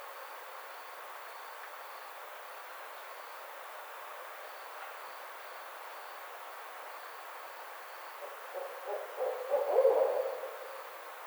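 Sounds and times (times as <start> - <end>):
barred owl hooting: 8.6 - 10.9.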